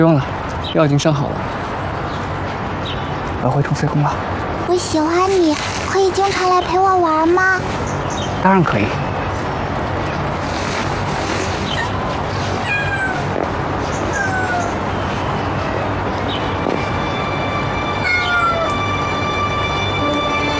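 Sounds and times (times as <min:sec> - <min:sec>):
speech: 0:00.0 - 0:01.5, 0:03.4 - 0:09.1
steady hum: 0:00.0 - 0:20.5
cat meowing: 0:11.8 - 0:13.4, 0:14.0 - 0:14.8, 0:18.0 - 0:18.8.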